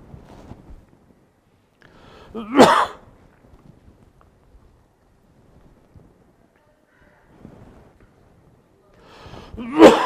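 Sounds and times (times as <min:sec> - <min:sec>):
coughing and throat clearing: 0:02.3 - 0:03.0, 0:09.6 - 0:10.0.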